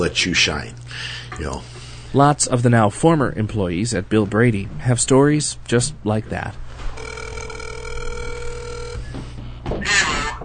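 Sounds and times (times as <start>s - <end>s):
speech: 0.0s - 6.6s
electronic phone ring tone over a speakerphone: 7.0s - 9.1s.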